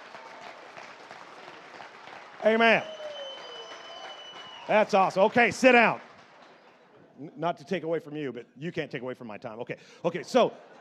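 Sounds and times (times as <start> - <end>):
audience applause for a military veteran: 0.0 - 6.8
speech: 2.4 - 3.0, 4.7 - 6.0, 7.2 - 10.7.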